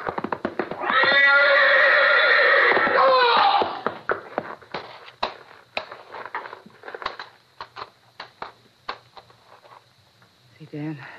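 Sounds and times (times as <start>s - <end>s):
horse whinnying in a stall: 0.8s - 3.9s.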